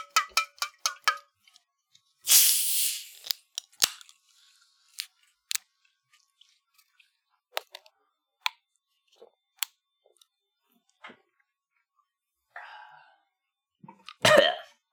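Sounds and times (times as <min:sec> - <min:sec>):
small clicks and taps: 0:00.0 - 0:01.3
cans of soda cracking open with a fizzing hiss: 0:02.3 - 0:04.2.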